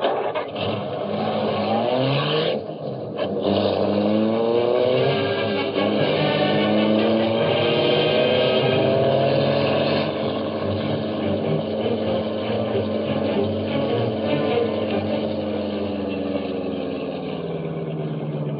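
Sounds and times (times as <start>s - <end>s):
car engine revving and accelerating away from a curb: 0.0s - 18.5s.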